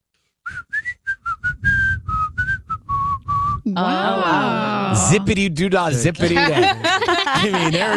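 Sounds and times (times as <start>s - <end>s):
person whistling a lively tune: 0.5s - 3.7s
speech: 3.7s - 7.9s
laughter: 3.8s - 5.4s, 6.0s - 7.9s.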